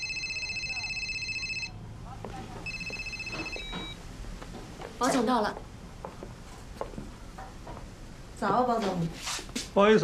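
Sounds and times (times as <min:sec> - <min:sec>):
phone line ringing on an outgoing call: 0:00.0 - 0:01.8, 0:02.6 - 0:04.0
low murmur: 0:00.0 - 0:09.7
speech: 0:05.0 - 0:05.7, 0:08.4 - 0:10.0.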